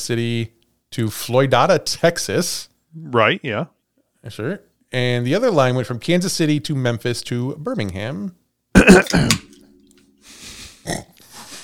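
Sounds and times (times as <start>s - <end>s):
speech: 0.0s - 9.5s, 10.8s - 11.1s
breathy throat-clearing rasps: 8.8s - 9.4s
person coughing: 8.8s - 9.5s.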